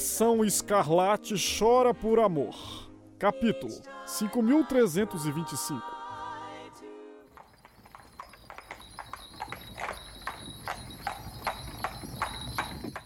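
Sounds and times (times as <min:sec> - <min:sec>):
speech: 0:00.2 - 0:06.0
horse hooves trotting: 0:07.3 - 0:13.0
short electronic tonal chime: 0:07.4 - 0:13.0.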